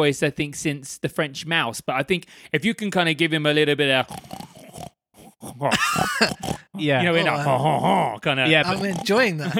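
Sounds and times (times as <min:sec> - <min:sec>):
speech: 0:00.0 - 0:04.5, 0:05.4 - 0:09.5
human voice imitating a French pig grunting and snorting: 0:04.0 - 0:09.5.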